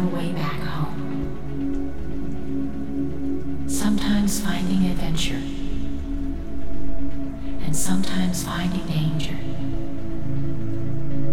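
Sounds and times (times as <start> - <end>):
low humming drone: 0.0 - 11.3
steady city rain: 0.0 - 11.3
speech: 7.8 - 9.6.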